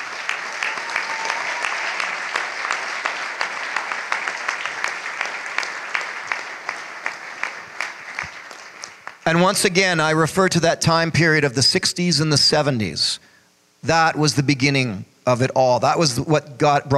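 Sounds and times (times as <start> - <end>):
audience applause of many hands: 0.0 - 9.7
speech: 9.3 - 16.9.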